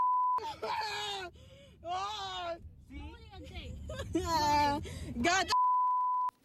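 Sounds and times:
short beep: 0:00.0 - 0:00.4, 0:05.5 - 0:06.3
steady low rumble of noise: 0:00.0 - 0:05.7
speech: 0:00.4 - 0:05.6.

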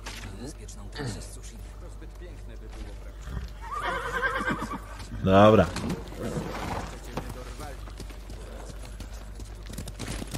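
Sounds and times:
speech: 0:00.4 - 0:06.4
horse neighing in a video game: 0:03.2 - 0:05.1, 0:06.1 - 0:07.0
soft hoof clip-clops in a video game: 0:05.8 - 0:10.3.

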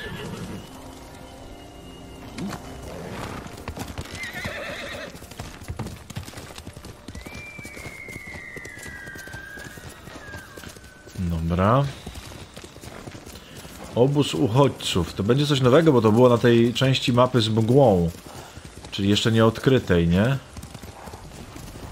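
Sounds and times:
video game horse whinnying: 0:00.0 - 0:00.7, 0:02.4 - 0:05.2, 0:07.4 - 0:11.1
video game horse hooves clip-clopping on the ground: 0:00.0 - 0:21.9
speech: 0:11.5 - 0:12.0, 0:14.0 - 0:18.3, 0:19.0 - 0:20.5.

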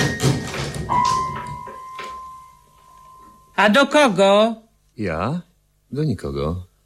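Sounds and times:
door banged open with a clattering burst: 0:00.0 - 0:02.4
speech: 0:03.6 - 0:06.7.

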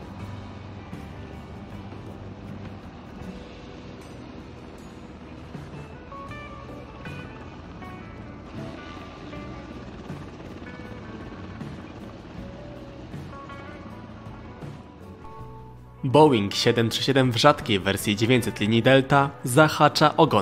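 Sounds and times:
US military helicopter hovering with rotor thumping: 0:00.0 - 0:15.2
US military helicopter turbine whining: 0:00.0 - 0:15.9
speech: 0:16.1 - 0:20.4.

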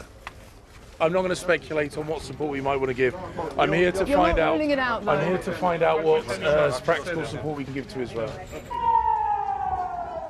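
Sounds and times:
speech: 0:01.0 - 0:08.9
air raid warning siren wailing: 0:08.7 - 0:10.2.

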